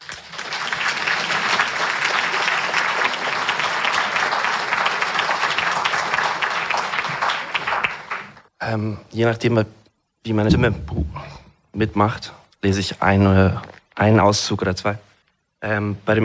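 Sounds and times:
audience applauding to welcome an author: 0.0 - 8.5
speech: 8.7 - 16.2.

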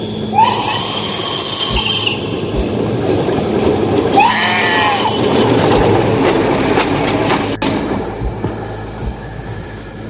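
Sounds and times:
shrill wavering squeals: 0.0 - 2.5, 4.1 - 5.6
high-speed ICE train roaring past: 0.0 - 10.0.

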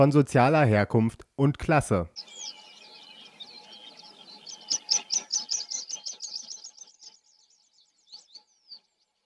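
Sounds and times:
speech: 0.0 - 2.5
meadow pipit singing: 2.1 - 9.2.

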